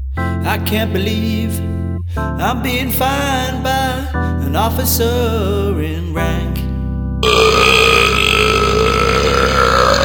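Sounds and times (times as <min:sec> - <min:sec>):
speech: 0:00.4 - 0:06.6
long loud burp: 0:07.2 - 0:10.0.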